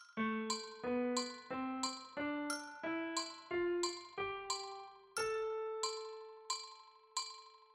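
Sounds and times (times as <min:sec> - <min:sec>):
backing track: 0:00.2 - 0:06.0
syncopated rhythm playing over a backing track: 0:00.2 - 0:07.4.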